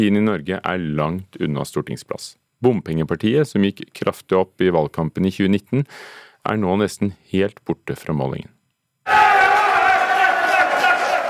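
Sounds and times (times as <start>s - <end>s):
speech: 0.0s - 9.5s
crowd cheering and shouting at election night party: 9.1s - 11.2s.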